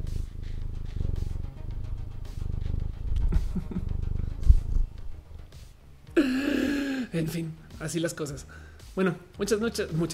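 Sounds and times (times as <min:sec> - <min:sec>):
cat purring: 0:00.0 - 0:05.2
laughter: 0:03.3 - 0:03.9
speech: 0:07.2 - 0:10.1.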